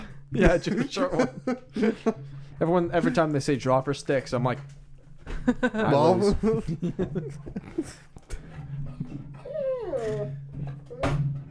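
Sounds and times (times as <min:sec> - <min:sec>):
speech: 0:00.3 - 0:04.8, 0:05.5 - 0:08.1
laughter: 0:00.4 - 0:02.2, 0:05.3 - 0:08.1
dog whimpering: 0:09.3 - 0:11.2.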